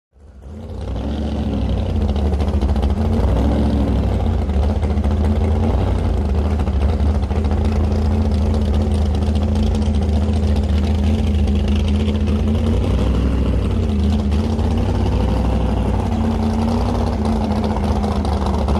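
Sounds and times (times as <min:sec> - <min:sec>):
drag boat being loaded: 0:00.2 - 0:18.7.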